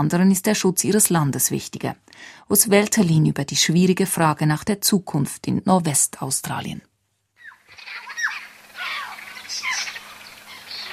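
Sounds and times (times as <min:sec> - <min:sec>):
speech: 0:00.0 - 0:06.9
hundreds of birds chirping and squawking at a waterhole in the Kimberley, northwestern Australia: 0:07.4 - 0:10.9.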